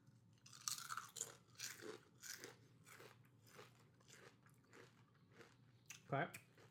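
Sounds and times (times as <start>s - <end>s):
Cape Cod kettle-cooked honey Dijon mustard potato chips crunching: 0.4s - 6.6s
speech: 6.1s - 6.4s.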